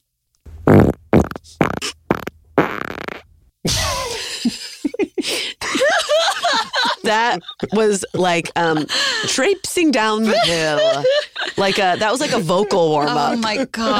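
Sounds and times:
fart: 0:00.6 - 0:03.3
laughter: 0:03.7 - 0:13.9
speech: 0:07.1 - 0:13.9.

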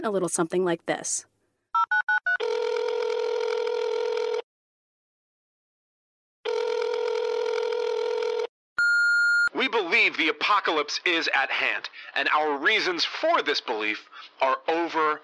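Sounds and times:
speech: 0:00.0 - 0:01.3, 0:09.7 - 0:15.2
phone dialing beeps: 0:01.8 - 0:03.3, 0:08.8 - 0:09.5
telephone ring tones on a call to a recorded message line: 0:01.8 - 0:04.4, 0:06.5 - 0:09.5.

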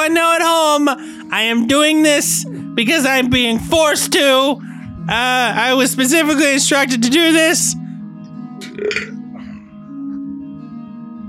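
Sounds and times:
speech: 0:00.0 - 0:07.8, 0:08.7 - 0:09.2
loud belch: 0:08.6 - 0:09.3.

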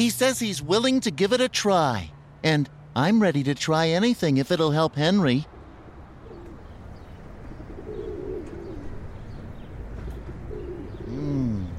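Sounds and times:
speech: 0:00.0 - 0:05.5
pigeon cooing: 0:05.6 - 0:06.8, 0:07.4 - 0:09.2, 0:10.1 - 0:11.7.

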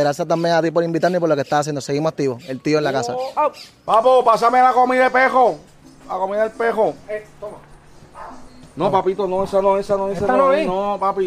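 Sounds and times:
speech: 0:00.0 - 0:07.7, 0:08.8 - 0:11.2
dog barking: 0:08.1 - 0:08.6.

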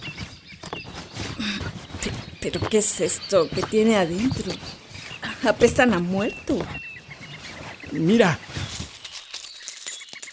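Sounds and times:
speech: 0:01.4 - 0:01.8, 0:02.4 - 0:04.8, 0:05.4 - 0:06.8, 0:07.9 - 0:08.5
silver coins jingling and clinking inside baskets: 0:02.8 - 0:05.9, 0:08.1 - 0:10.3.

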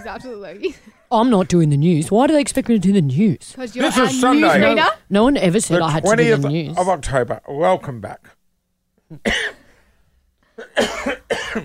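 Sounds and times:
speech: 0:00.0 - 0:08.4, 0:09.1 - 0:09.6, 0:10.7 - 0:11.6
person coughing harshly: 0:09.1 - 0:09.7, 0:10.6 - 0:11.6.

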